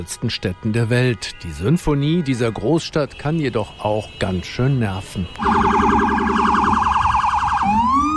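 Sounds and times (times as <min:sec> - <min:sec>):
speech: 0:00.0 - 0:06.5
police and emergency vehicle sirens wailing: 0:01.9 - 0:08.1.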